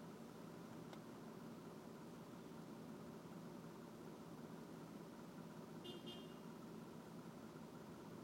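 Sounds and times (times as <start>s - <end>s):
car engine and road rumble in a cabin in traffic: 0.0s - 8.2s
horn-like toot: 5.8s - 6.5s.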